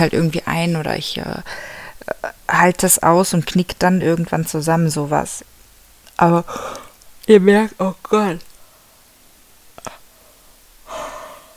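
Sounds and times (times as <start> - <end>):
speech: 0.0 - 5.5, 6.2 - 8.5
soft mouth clicks: 9.8 - 10.1
drawn-out breathy yawn with faint voiced groan: 10.9 - 11.5.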